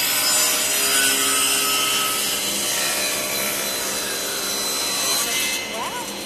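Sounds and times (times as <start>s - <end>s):
table saw cutting through wood: 0.0s - 6.2s.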